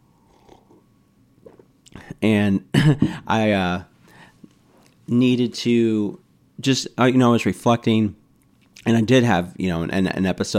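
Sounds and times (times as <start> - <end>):
person sipping a hot drink: 0.1 - 2.0
speech: 2.1 - 3.9, 5.1 - 8.2, 8.8 - 10.5.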